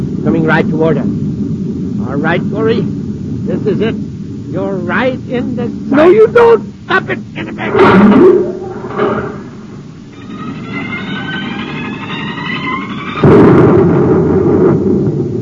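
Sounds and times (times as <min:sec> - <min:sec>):
low rumble: 0:00.0 - 0:15.3
speech: 0:00.4 - 0:01.2, 0:02.0 - 0:09.3
gun blast: 0:07.7 - 0:09.8, 0:13.2 - 0:15.3
high whistling tones: 0:08.0 - 0:13.3.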